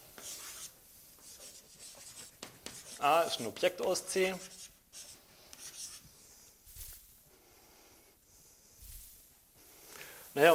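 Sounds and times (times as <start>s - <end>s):
handwriting during a mathematics lecture: 0.0s - 7.0s
speech: 3.0s - 4.6s, 10.4s - 10.5s.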